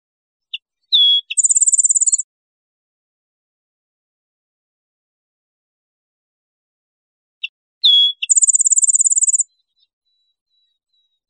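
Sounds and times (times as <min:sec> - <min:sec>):
rufous-winged sparrow singing: 0:00.5 - 0:02.2, 0:07.8 - 0:11.2.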